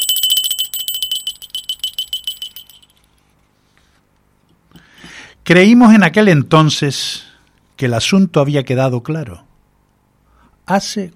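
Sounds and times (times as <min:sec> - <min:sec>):
small hand bell ringing: 0:00.0 - 0:03.1
speech: 0:05.5 - 0:09.5, 0:10.7 - 0:11.1.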